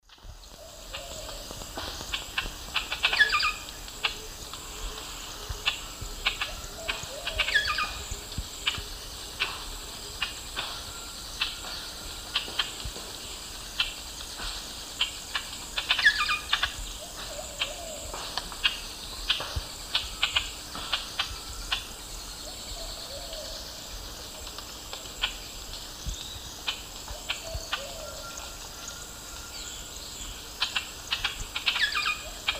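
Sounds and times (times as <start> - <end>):
Lampropsar tanagrinus pair calling and singing in Eastern Lowlands of South America: 0.1 - 32.5.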